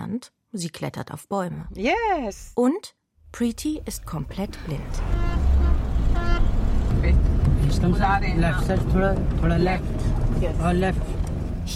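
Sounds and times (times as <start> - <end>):
speech: 0.1 - 5.3, 6.2 - 11.7
car engine rumbling while driven slowly on an empty parking lot: 3.4 - 11.7.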